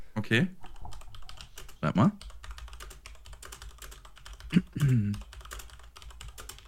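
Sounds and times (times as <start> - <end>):
speech: 0.2 - 0.6, 1.8 - 2.3, 4.5 - 5.3
typing on a computer keyboard: 0.7 - 6.6.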